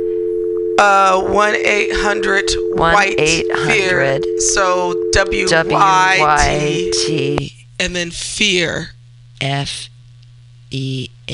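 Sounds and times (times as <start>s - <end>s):
telephone dial tone: 0.0s - 0.8s, 1.8s - 7.2s
speech: 0.8s - 9.9s, 10.7s - 11.3s
harsh electronic warble on a phone line: 1.9s - 7.4s.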